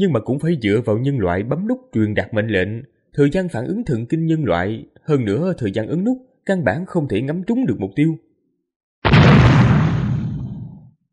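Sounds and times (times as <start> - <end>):
speech: 0.0 - 8.3
artillery shell over 100mm in caliber exploding on a frontline position: 9.0 - 10.9.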